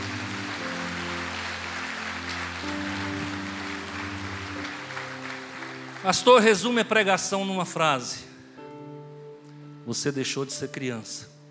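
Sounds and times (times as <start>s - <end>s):
audience applause: 0.0s - 7.1s
held musical chords: 0.0s - 7.1s
speech: 6.0s - 8.3s, 9.9s - 11.4s.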